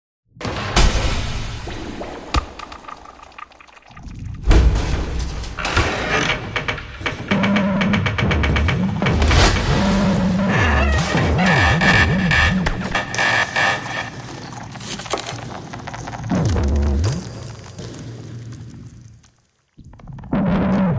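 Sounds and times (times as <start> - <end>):
fantasy dark dungeon glitchy abstract ambience: 0.4 - 20.9.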